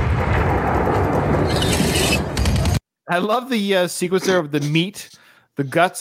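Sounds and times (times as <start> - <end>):
heavy rumbling booms: 0.0 - 2.8
loud dense gunfire: 0.0 - 2.8
speech: 3.1 - 5.9.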